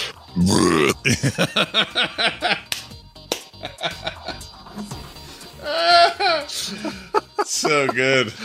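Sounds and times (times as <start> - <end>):
loud deep burp: 0.4 - 1.1
speech: 0.4 - 2.6, 7.7 - 8.4
people laughing: 1.0 - 2.7, 3.6 - 4.4, 5.8 - 8.3.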